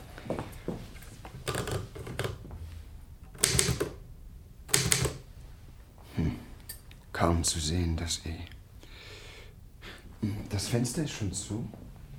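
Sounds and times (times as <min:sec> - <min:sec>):
typewriter typing: 0:01.4 - 0:02.4, 0:03.3 - 0:04.0, 0:04.7 - 0:05.3
speech: 0:07.2 - 0:08.6, 0:10.2 - 0:11.8.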